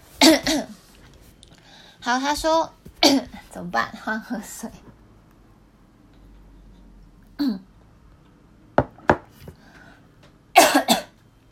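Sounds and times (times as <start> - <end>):
person coughing: 0.2 - 0.8, 10.6 - 11.2
speech: 2.0 - 4.9.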